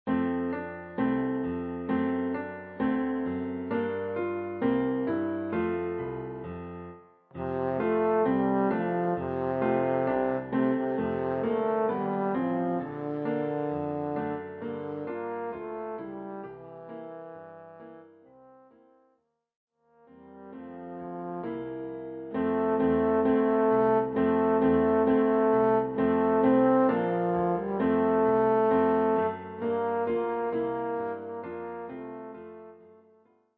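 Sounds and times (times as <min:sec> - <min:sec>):
piano: 0:00.0 - 0:19.1, 0:20.0 - 0:33.5
trombone: 0:07.4 - 0:19.1, 0:20.1 - 0:33.2.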